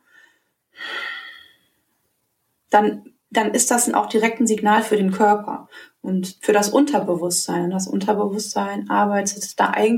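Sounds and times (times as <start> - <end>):
long slow airy exhale of a person regulating breathing: 0.0 - 1.7
soft brief intake of breath: 0.8 - 1.6
speech: 2.7 - 9.9.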